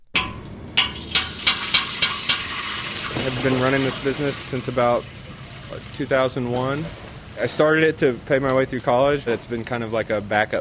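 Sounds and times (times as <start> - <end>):
kettle corn sizzling in a homemade kettle: 0.4 - 7.6
scraping strokes of kettle corn being stirred: 0.8 - 7.9
speech: 3.2 - 10.6.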